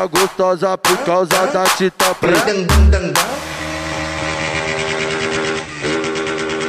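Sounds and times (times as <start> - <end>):
speech: 0.0 - 3.3
motorcycle engines revving outside: 3.2 - 6.6.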